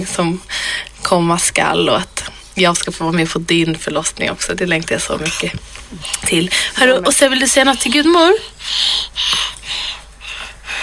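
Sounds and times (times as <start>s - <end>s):
speech: 0.0s - 9.3s
child panting heavily into microphone: 5.9s - 10.8s.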